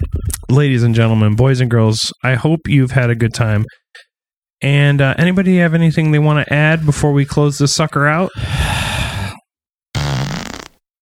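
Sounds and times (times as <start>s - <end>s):
speech: 0.0s - 9.0s
auto-tuned fart sound effect: 10.0s - 10.8s.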